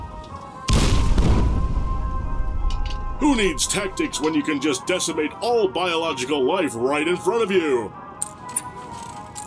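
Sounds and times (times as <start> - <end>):
video game explosions from a tactical nuclear catapult and a multi-warhead launcher: 0.7 - 3.9
speech: 3.3 - 8.0.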